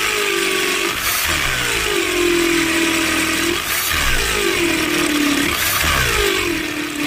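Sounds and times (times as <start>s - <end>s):
power drill running: 0.0s - 7.0s.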